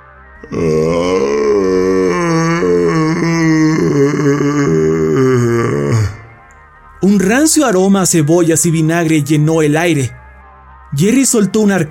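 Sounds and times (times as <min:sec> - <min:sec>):
speech: 0:00.4 - 0:01.3, 0:07.5 - 0:10.2, 0:10.9 - 0:11.9
man's long hoarse throaty groan: 0:00.4 - 0:06.4.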